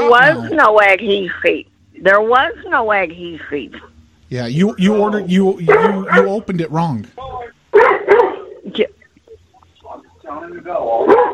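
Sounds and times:
speech: 0.1 - 7.9, 8.7 - 9.0, 10.3 - 11.3
dog barking: 5.7 - 6.3, 7.8 - 8.5, 11.0 - 11.3.

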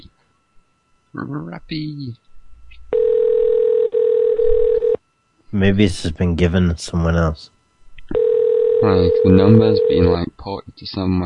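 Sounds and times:
speech: 1.2 - 2.3, 5.5 - 7.6, 8.8 - 11.2
mobile phone call ringing: 2.9 - 5.0, 8.1 - 10.1.

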